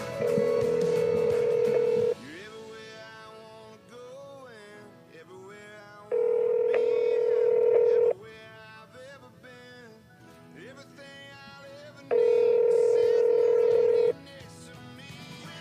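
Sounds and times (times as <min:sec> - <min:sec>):
telephone ringback tone: 0:00.2 - 0:02.2, 0:06.1 - 0:08.2, 0:12.1 - 0:14.1.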